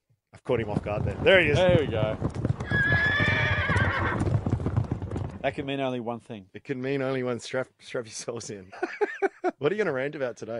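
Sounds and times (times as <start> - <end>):
horse hooves clip-clopping while trotting: 0.4 - 5.8
speech: 0.5 - 2.5, 5.4 - 10.5
horse whinnying with a long wavering neigh: 2.5 - 4.7
laughter: 8.7 - 9.6.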